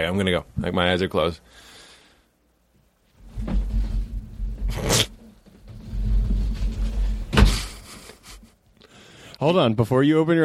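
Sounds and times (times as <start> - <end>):
speech: 0.0 - 1.7, 9.4 - 10.4
steady low rumble: 3.2 - 7.8
door opening and closing: 3.2 - 7.9.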